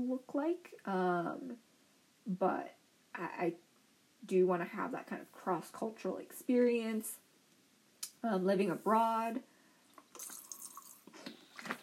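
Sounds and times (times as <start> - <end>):
speech: 0.0 - 1.7, 2.3 - 7.2, 8.2 - 9.5
person sipping water: 9.8 - 11.8.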